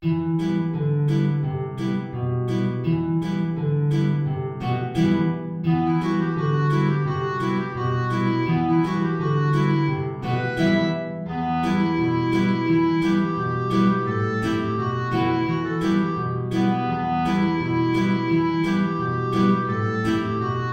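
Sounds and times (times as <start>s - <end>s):
low guitar: 0.0s - 20.7s
B-flat clarinet: 4.8s - 20.7s.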